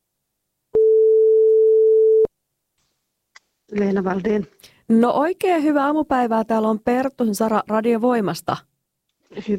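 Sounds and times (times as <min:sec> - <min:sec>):
telephone ringing tone on an outgoing call through the line: 0:00.8 - 0:02.3
speech: 0:03.7 - 0:08.7, 0:09.3 - 0:09.5.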